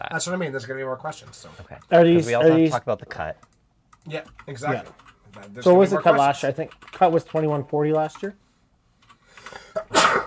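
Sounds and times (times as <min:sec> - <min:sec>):
speech: 0:00.0 - 0:08.4
single sneeze with intake of breath: 0:09.8 - 0:10.2.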